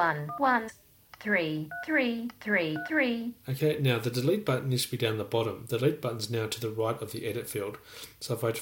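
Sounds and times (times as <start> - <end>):
speech: 0.0 - 8.6
electronic phone keypad tones as a number is typed: 1.7 - 2.0, 2.7 - 3.0.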